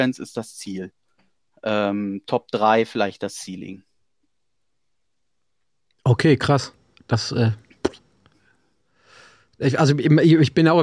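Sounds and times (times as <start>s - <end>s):
speech: 0.0s - 1.0s, 1.6s - 3.9s, 6.1s - 7.6s, 9.6s - 10.8s
person sneezing: 7.8s - 8.0s.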